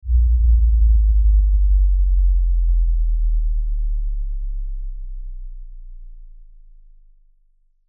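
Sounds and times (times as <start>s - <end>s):
descending low bass LFE: 0.0s - 7.3s.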